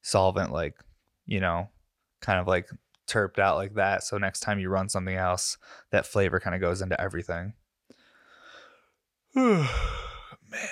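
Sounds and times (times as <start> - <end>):
speech: 0.1 - 7.6, 9.3 - 10.7
breathy exhale: 8.0 - 10.7
person yawning: 9.4 - 10.7.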